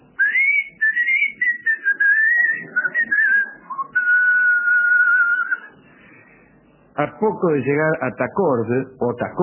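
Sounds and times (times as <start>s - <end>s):
person whistling a wavering melodic line: 0.2s - 5.7s
speech: 7.0s - 9.4s.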